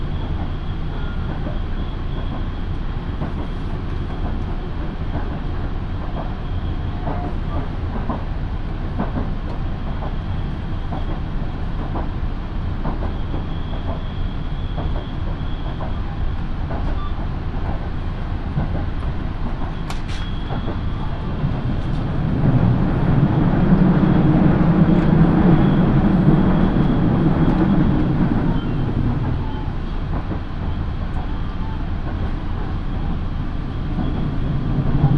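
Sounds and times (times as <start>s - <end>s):
faint rhythmic clicks from the rails: 0.0s - 35.1s
local train wheels and motor rumbling inside the cabin: 0.0s - 35.1s.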